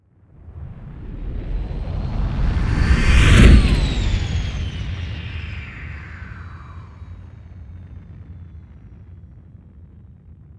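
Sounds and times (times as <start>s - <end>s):
spaceship whoosh: 0.4s - 7.2s.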